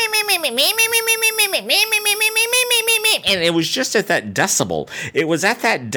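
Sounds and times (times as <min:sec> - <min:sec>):
voice imitating high-pitched squeaky kitten-like mewing: 0:00.0 - 0:03.6
speech: 0:00.4 - 0:05.9.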